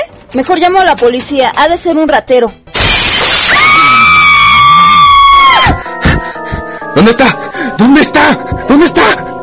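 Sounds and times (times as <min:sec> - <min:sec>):
speech: 0:00.3 - 0:02.6, 0:07.0 - 0:09.2
door violently smashed in with splintering and breaking: 0:02.7 - 0:03.8
long shrill cry: 0:02.8 - 0:05.8.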